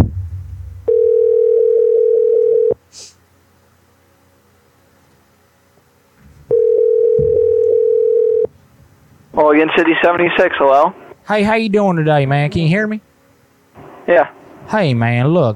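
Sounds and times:
telephone line buzzing tones while a prank call is placed: 0:00.9 - 0:02.8, 0:06.5 - 0:08.5
speech: 0:09.7 - 0:13.1, 0:14.1 - 0:15.5.

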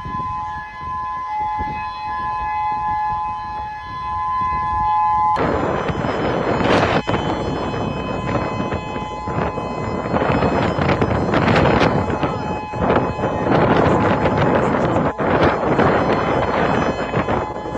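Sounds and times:
civil defense siren wailing: 0:00.0 - 0:17.7
outdoor noise: 0:00.0 - 0:17.7
broadband rumble: 0:05.4 - 0:17.7.

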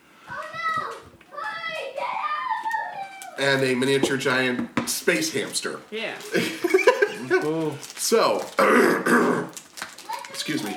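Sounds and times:
children chattering and calling out while playing: 0:00.3 - 0:04.0, 0:10.0 - 0:10.7
speech: 0:03.4 - 0:06.7, 0:07.3 - 0:09.6, 0:10.4 - 0:10.7
laughter: 0:06.3 - 0:07.6.

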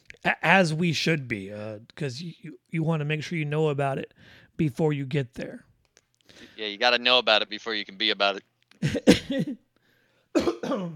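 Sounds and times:
speech: 0:00.2 - 0:05.7, 0:06.3 - 0:09.6, 0:10.4 - 0:10.9
person coughing: 0:08.8 - 0:09.6, 0:10.3 - 0:10.9.

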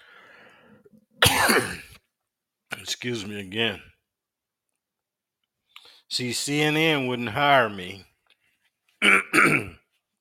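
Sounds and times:
person clearing throat: 0:01.2 - 0:02.0, 0:09.0 - 0:09.9
speech: 0:01.6 - 0:01.8, 0:03.0 - 0:03.9, 0:06.1 - 0:08.1.

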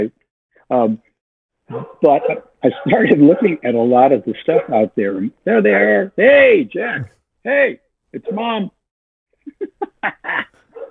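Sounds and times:
speech: 0:00.0 - 0:01.1, 0:01.7 - 0:08.8, 0:09.5 - 0:10.5
dog barking: 0:01.7 - 0:03.7, 0:04.4 - 0:04.9, 0:08.2 - 0:08.6, 0:10.7 - 0:10.8
laughter: 0:02.7 - 0:03.6, 0:09.4 - 0:10.6.

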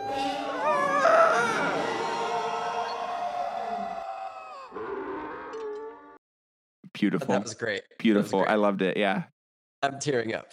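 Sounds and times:
several people screaming together: 0:00.0 - 0:05.6
speech: 0:07.0 - 0:10.5.

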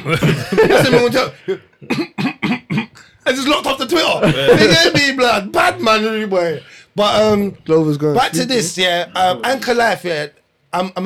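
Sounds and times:
laughter: 0:00.0 - 0:01.7, 0:04.0 - 0:06.0
speech: 0:00.0 - 0:02.2, 0:03.3 - 0:11.0
person imitating a bout of coughing: 0:00.0 - 0:03.1, 0:04.2 - 0:05.2.

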